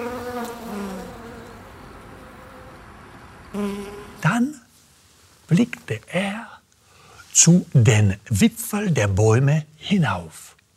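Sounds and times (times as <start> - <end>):
bees buzzing: 0.0 - 2.8, 3.5 - 4.2
speech: 7.4 - 10.5.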